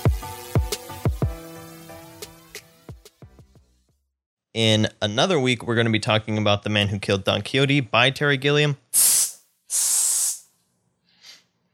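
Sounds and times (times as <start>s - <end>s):
speech: 4.6s - 9.1s
person hissing at a cat: 8.9s - 10.5s, 11.2s - 11.5s.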